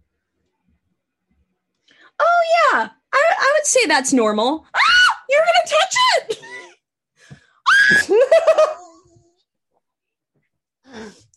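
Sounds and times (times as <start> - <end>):
speech: 2.2 - 3.0, 3.7 - 4.7, 5.3 - 6.5
person screaming in surprise: 7.7 - 8.2.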